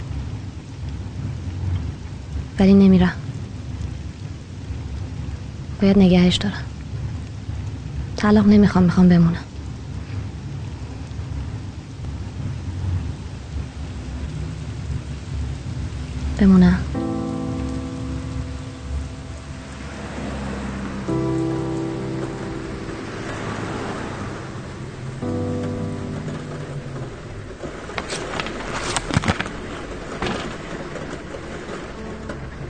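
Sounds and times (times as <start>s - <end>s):
steady rain: 0.0s - 32.6s
speech: 2.6s - 3.2s, 5.8s - 6.7s, 8.2s - 9.5s, 16.4s - 17.0s
low sustained musical drone: 16.9s - 32.6s.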